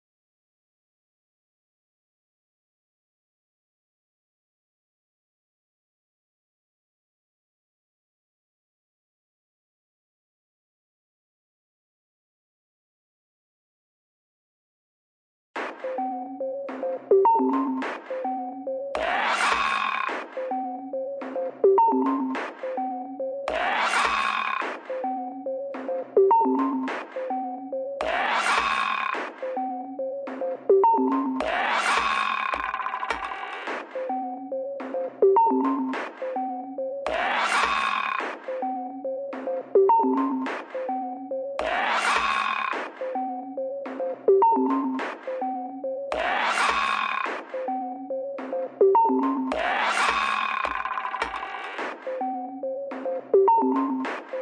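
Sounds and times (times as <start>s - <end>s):
electronic bleeps: 15.8s - 54.3s.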